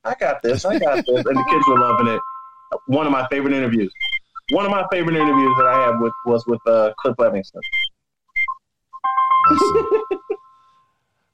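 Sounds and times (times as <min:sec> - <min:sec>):
speech: 0:00.0 - 0:07.8, 0:09.5 - 0:10.3
laughter: 0:00.5 - 0:01.8, 0:09.5 - 0:10.4
mobile phone ringtone: 0:01.2 - 0:02.8, 0:05.1 - 0:06.6, 0:09.0 - 0:10.8.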